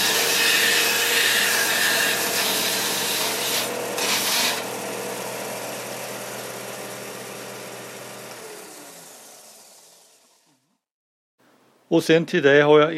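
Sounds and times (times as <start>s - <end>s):
belt sander sanding: 0.0s - 10.2s
speech: 11.9s - 12.9s.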